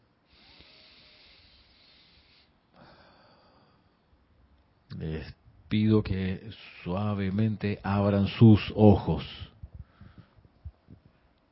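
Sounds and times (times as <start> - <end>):
deep breath during a guided practice: 0.2 - 4.0, 9.7 - 11.1
speech: 5.0 - 9.5.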